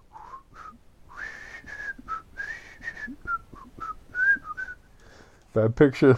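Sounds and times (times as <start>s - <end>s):
soft breathy human whistling of a meandering tune: 0.1s - 4.8s
speech: 5.5s - 6.1s.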